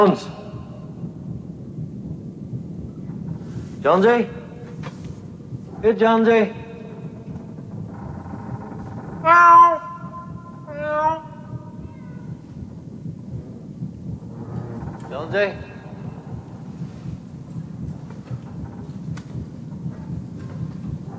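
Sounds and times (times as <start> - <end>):
speech: 0.0 - 0.4, 3.8 - 4.4, 5.8 - 6.6, 9.2 - 9.8, 15.2 - 15.7
steady low rumbling noise: 0.0 - 21.1
cat meowing: 11.8 - 12.4.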